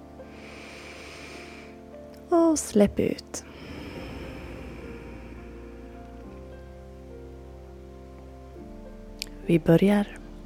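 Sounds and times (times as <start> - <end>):
faint sustained tonal background: 0.0 - 10.4
deep inhale through the nose: 0.2 - 2.0, 3.4 - 6.5
speech: 2.3 - 3.5, 9.5 - 10.2.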